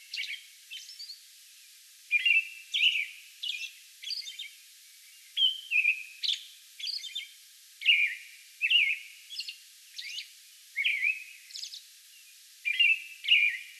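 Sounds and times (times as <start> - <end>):
American robin singing: 0.0 - 1.2, 2.1 - 13.7.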